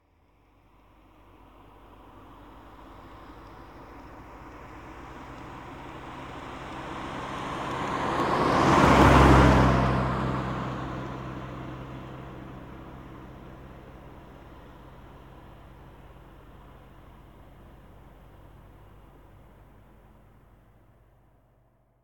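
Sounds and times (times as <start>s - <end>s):
stock Mazda Miata MX5 NBFL 1.6 passing by at 30 km/h constant rpm: 1.9s - 15.9s.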